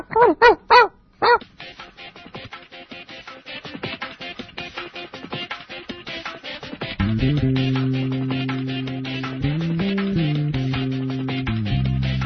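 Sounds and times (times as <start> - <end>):
dog barking: 0.0 - 1.5
steady electronic hum: 7.0 - 12.1.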